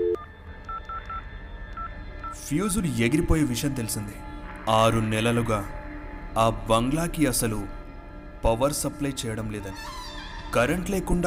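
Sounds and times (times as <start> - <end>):
telephone keypad dialing beeps calling the electricity office: 0.0 - 1.2
speech: 2.4 - 5.8, 6.4 - 7.8, 8.4 - 11.2.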